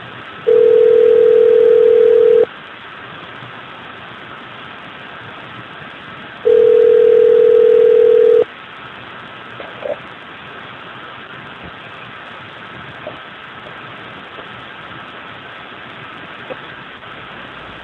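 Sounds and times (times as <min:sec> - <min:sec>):
constant hiss of phone-line static: 0:00.0 - 0:17.8
long steady telephone tones: 0:00.5 - 0:02.5, 0:06.4 - 0:08.5.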